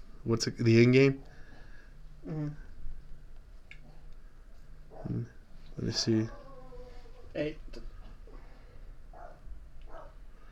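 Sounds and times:
low steady room hum: 0:00.0 - 0:10.5
speech: 0:00.2 - 0:01.3, 0:02.2 - 0:02.6, 0:05.0 - 0:06.4, 0:07.4 - 0:07.9
dog barking: 0:04.9 - 0:05.3, 0:09.1 - 0:10.2.

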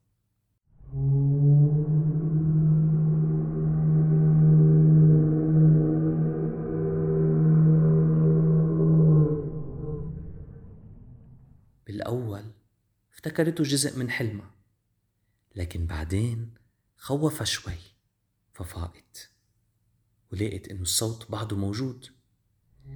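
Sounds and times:
deep resonant musical moan from the sea: 0:00.8 - 0:11.8
speech: 0:13.4 - 0:14.6, 0:15.6 - 0:17.9, 0:18.6 - 0:19.3, 0:20.3 - 0:22.2.

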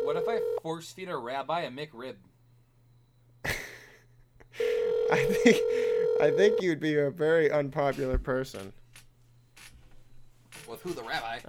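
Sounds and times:
telephone ringing tone of unanswered call: 0:00.0 - 0:00.6, 0:04.6 - 0:06.7
speech: 0:00.1 - 0:02.3, 0:04.5 - 0:08.8, 0:10.7 - 0:11.4.

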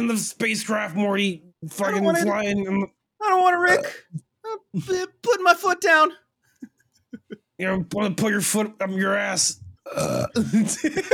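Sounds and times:
speech: 0:00.0 - 0:06.7, 0:07.6 - 0:11.1
loud croaking burp with voiced sounds: 0:03.7 - 0:04.2, 0:09.8 - 0:10.6
laughter: 0:06.6 - 0:07.5, 0:10.4 - 0:11.1.

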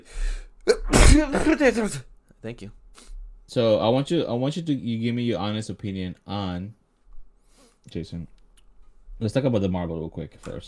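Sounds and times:
person sneezing: 0:00.7 - 0:01.7
speech: 0:01.2 - 0:06.8, 0:07.8 - 0:08.4, 0:09.2 - 0:10.6.

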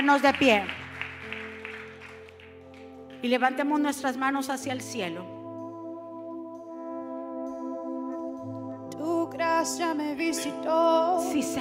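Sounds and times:
speech: 0:00.0 - 0:00.8, 0:03.2 - 0:05.4, 0:09.6 - 0:11.5
audience applauding: 0:00.0 - 0:03.2
sustained keyboard chords: 0:00.0 - 0:11.5.

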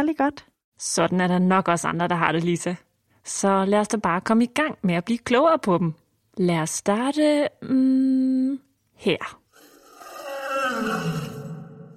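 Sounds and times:
speech: 0:00.0 - 0:09.4
lion roaring: 0:09.6 - 0:11.9.

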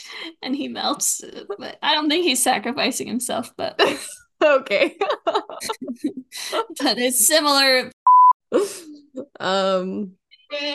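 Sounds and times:
speech: 0:00.1 - 0:10.7
laughter: 0:04.8 - 0:06.8
short electronic beep from a phone: 0:08.0 - 0:08.4.

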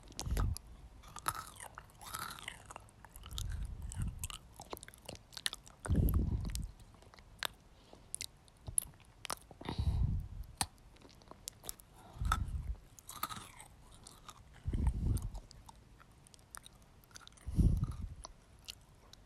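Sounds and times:
person biting and chewing pocky sticks: 0:00.0 - 0:09.6, 0:10.5 - 0:19.2
heavier low thumps of chewing: 0:00.0 - 0:19.2.

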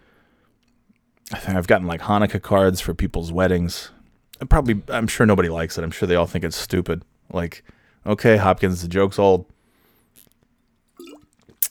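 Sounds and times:
speech: 0:01.4 - 0:09.6
water drips and small splashy plops: 0:11.0 - 0:11.6.

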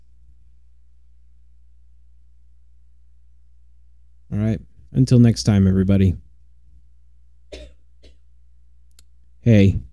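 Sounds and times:
speech: 0:04.6 - 0:06.2, 0:09.4 - 0:09.9
person coughing: 0:07.5 - 0:08.2.

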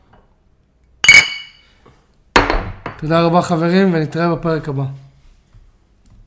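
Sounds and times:
glasses clinking in a toast: 0:01.0 - 0:01.8
speech: 0:03.0 - 0:05.0.

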